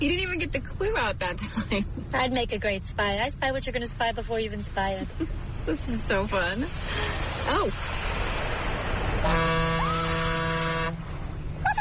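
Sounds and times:
speech: 0.0s - 8.4s, 9.2s - 9.6s
road noise: 0.0s - 11.7s
car horn blast: 9.2s - 11.1s.

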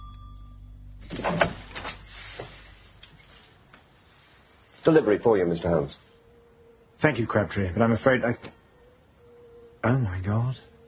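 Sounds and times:
door opening with rattling scrape: 1.1s - 2.6s
speech: 4.9s - 6.1s, 7.0s - 8.5s.

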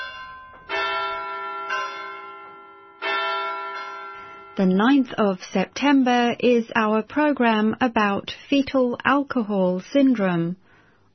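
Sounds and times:
large bell ringing in resonant strokes: 0.0s - 5.4s
speech: 4.6s - 10.6s.

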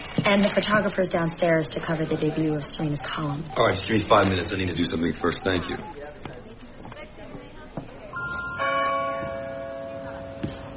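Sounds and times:
speech: 0.3s - 6.4s
church bells ringing: 8.2s - 10.7s.

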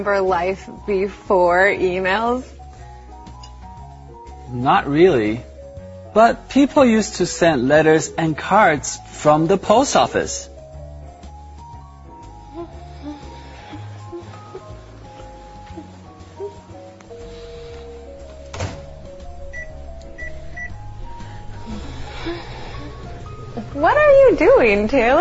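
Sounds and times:
speech: 0.0s - 2.6s, 4.5s - 5.5s, 6.1s - 10.5s, 24.7s - 25.1s
microwave oven door clunk: 18.5s - 19.0s
microwave oven heating lunch: 18.9s - 24.6s.

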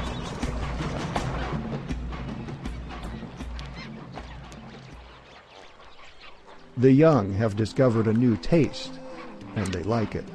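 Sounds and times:
flamingos honking during a predator attack: 0.0s - 10.3s
speech: 6.8s - 9.0s, 9.6s - 10.3s.

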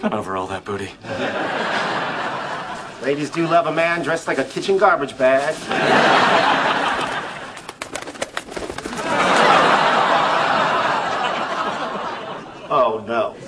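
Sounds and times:
speech: 0.0s - 2.2s, 3.0s - 6.9s, 13.0s - 13.4s
laughter: 1.0s - 3.8s, 5.5s - 7.8s, 8.8s - 13.4s
pigeon wings flapping noisily indoors: 6.9s - 9.3s.

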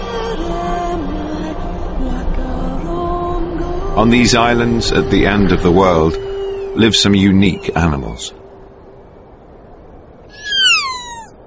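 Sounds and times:
faint low rumble: 0.0s - 11.4s
speech: 4.0s - 8.4s
kea alpine parrot of New Zealand calling: 10.3s - 11.4s.

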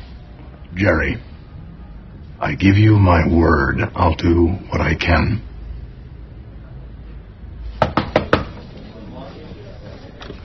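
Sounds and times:
speech: 0.8s - 1.3s, 2.4s - 5.5s
knocking on an office door: 7.8s - 8.6s.

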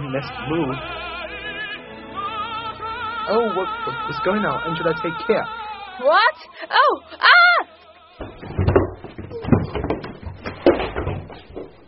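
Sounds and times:
speech: 0.1s - 1.2s, 3.3s - 7.7s
bodies colliding as a person is knocked down: 8.2s - 11.8s
person running heavily down a staircase: 8.2s - 11.8s.

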